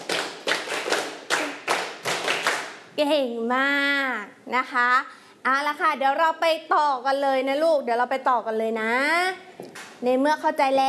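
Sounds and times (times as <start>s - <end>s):
children clapping hands in unison during a lesson: 0.0s - 2.8s
speech: 3.0s - 10.8s.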